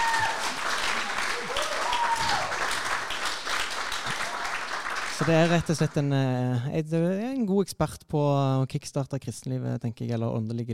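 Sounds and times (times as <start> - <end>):
live crowd applauding: 0.0 - 6.1
speech: 5.2 - 10.7.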